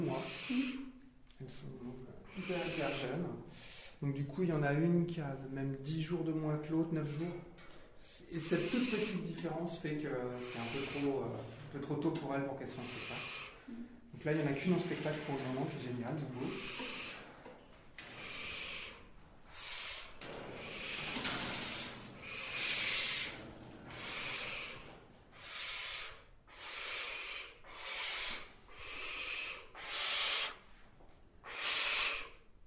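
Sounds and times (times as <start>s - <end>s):
barn owl giving harsh hissing screeches: 0.0s - 0.9s, 2.3s - 3.8s, 8.4s - 9.4s, 10.2s - 11.5s, 12.7s - 13.7s, 14.9s - 17.3s, 18.0s - 30.7s, 31.4s - 32.5s
speech: 0.0s - 16.9s.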